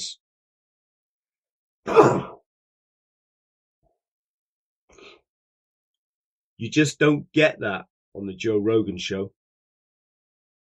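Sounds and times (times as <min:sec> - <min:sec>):
sneeze: 0:01.9 - 0:02.4
speech: 0:06.6 - 0:09.4.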